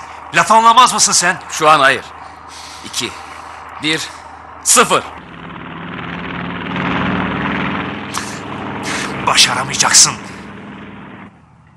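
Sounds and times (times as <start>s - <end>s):
airplane rattling all over with a clattering roar: 0.0s - 11.7s
speech: 0.3s - 2.2s, 2.8s - 3.2s, 3.8s - 5.3s, 9.3s - 10.3s.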